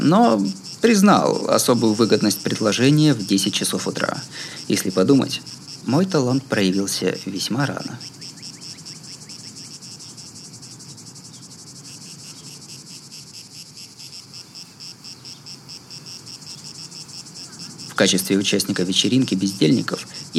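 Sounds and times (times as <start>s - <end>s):
speech: 0.0s - 8.2s, 18.0s - 20.3s
chorus of cicadas buzzing: 0.0s - 20.3s.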